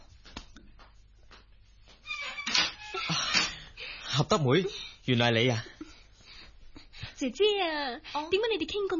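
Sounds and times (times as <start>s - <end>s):
door creaking open: 2.1s - 3.6s
speech: 4.2s - 5.7s, 7.2s - 8.9s.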